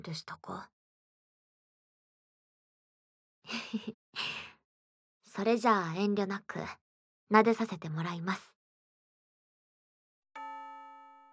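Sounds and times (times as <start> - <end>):
speech: 0.0 - 0.8, 3.5 - 4.4, 5.4 - 8.5
school chime ringing: 10.4 - 11.3.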